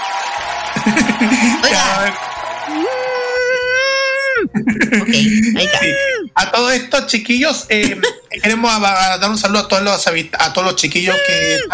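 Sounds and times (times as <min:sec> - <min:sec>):
laughter: 0:00.7 - 0:06.3, 0:07.7 - 0:08.7, 0:11.0 - 0:11.7
person shouting in the background: 0:00.8 - 0:02.0, 0:02.7 - 0:06.4, 0:11.0 - 0:11.7
speech: 0:00.8 - 0:03.2, 0:04.5 - 0:11.7.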